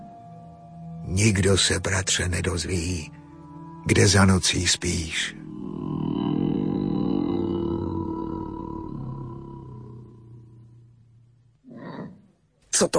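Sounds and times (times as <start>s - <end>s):
speech: 1.1s - 3.2s, 3.9s - 5.5s, 12.8s - 12.9s
bear roaring: 5.3s - 11.0s, 11.6s - 12.4s.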